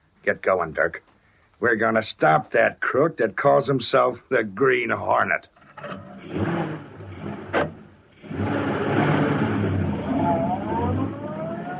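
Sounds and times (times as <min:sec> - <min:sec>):
speech: 0:00.2 - 0:06.5
car engine pulling away into street: 0:05.8 - 0:11.7
short thump: 0:07.5 - 0:07.8.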